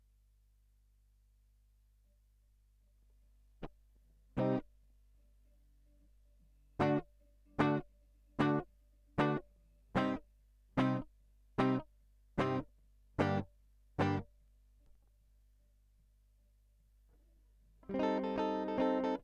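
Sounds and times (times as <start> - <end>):
guitar line: 4.4 - 4.6, 6.8 - 7.0, 7.6 - 7.8, 8.4 - 8.6, 9.2 - 9.4, 10.0 - 10.2, 10.8 - 11.0, 11.6 - 11.8, 12.4 - 12.6, 13.2 - 13.4, 14.0 - 14.2, 17.8 - 19.2.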